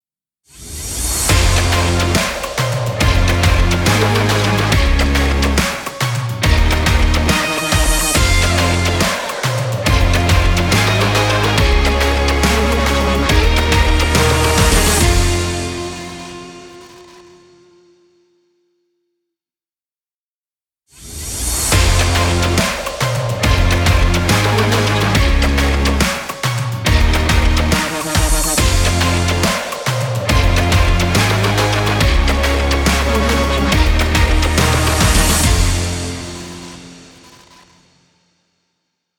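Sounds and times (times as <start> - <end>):
sports intro music: 1.0 - 17.8, 21.6 - 37.7.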